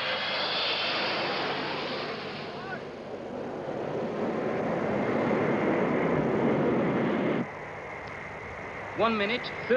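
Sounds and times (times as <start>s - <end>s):
Air France Concorde supersonic airliner jet roar landing at Kennedy Airport: 0.0s - 9.7s
speech: 9.0s - 9.7s.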